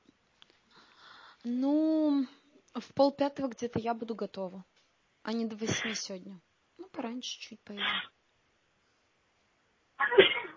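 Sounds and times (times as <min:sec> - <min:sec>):
speech: 0:01.4 - 0:08.1
sneeze: 0:07.8 - 0:08.1, 0:10.0 - 0:10.5.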